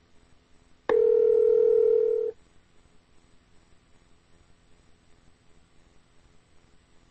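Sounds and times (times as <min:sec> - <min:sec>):
faint hiss: 0:00.0 - 0:07.0
steady telephone dialing tone: 0:00.9 - 0:02.3.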